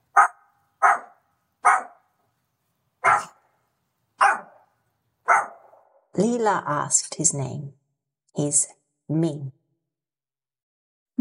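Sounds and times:
small dog on a leash barking in a queue: 0.1 - 2.1, 3.0 - 3.5, 4.2 - 6.0
speech: 6.2 - 7.8, 8.4 - 9.6.

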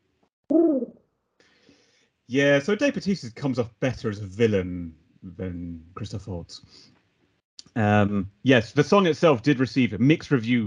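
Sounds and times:
person imitating a wood pigeon call: 0.5 - 1.0
speech: 2.3 - 7.0, 7.7 - 10.6.

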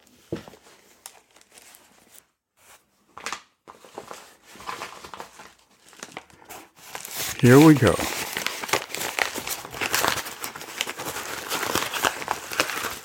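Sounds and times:
speech: 0.3 - 0.6, 7.4 - 8.2
padded envelope crinkling and crumpling being opened for an unboxing: 3.7 - 13.0.

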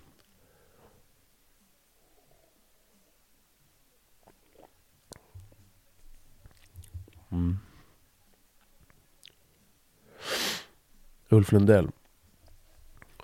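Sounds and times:
sipping red wine from a glass: 4.2 - 5.2
low gulping swallows: 4.2 - 5.6, 6.4 - 7.7
speech: 11.4 - 12.0.

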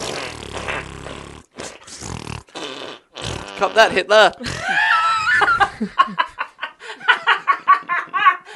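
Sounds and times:
fart noise sound effect: 0.0 - 4.6
speech: 3.6 - 4.8
laughter: 4.6 - 8.5.

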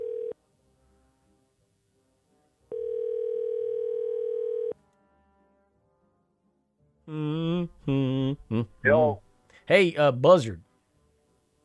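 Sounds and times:
telephone dial tone while a call is being placed: 0.0 - 0.4, 2.7 - 4.8
speech: 7.1 - 10.6.

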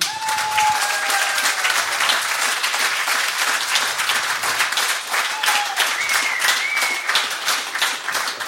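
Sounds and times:
faint whistles or cheers from the crowd: 0.0 - 1.9, 5.2 - 7.3
audience applause: 0.0 - 8.4.

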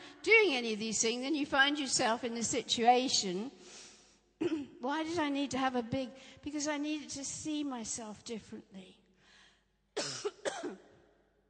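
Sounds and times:
speech: 0.2 - 3.7, 4.4 - 9.0
coughs: 4.4 - 4.8, 10.0 - 11.0.

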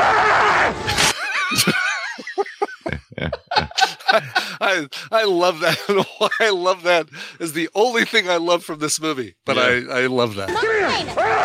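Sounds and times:
snickering laughter: 1.0 - 4.7, 5.7 - 6.6
speech: 1.5 - 1.8, 4.2 - 11.4
man yelling angrily: 9.5 - 9.9.

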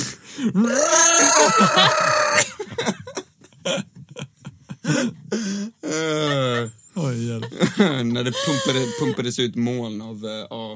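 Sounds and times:
speech: 0.4 - 3.0, 8.2 - 10.6
voice imitating someone screaming into a snorkel: 0.6 - 2.4
laughter: 1.4 - 5.1, 6.1 - 9.2.

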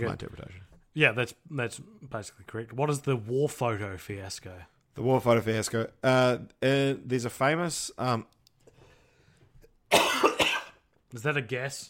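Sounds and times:
speech: 0.0 - 8.4, 11.1 - 11.8
person coughing: 9.9 - 10.9.

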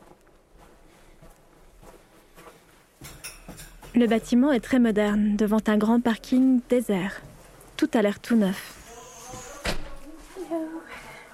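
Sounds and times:
speech: 3.9 - 8.8
door creaking: 8.8 - 10.0.

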